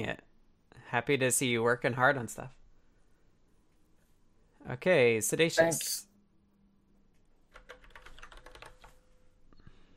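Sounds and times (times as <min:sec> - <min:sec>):
speech: 0:00.0 - 0:00.3, 0:00.9 - 0:02.6, 0:04.6 - 0:06.1
typing on a computer keyboard: 0:07.5 - 0:09.0.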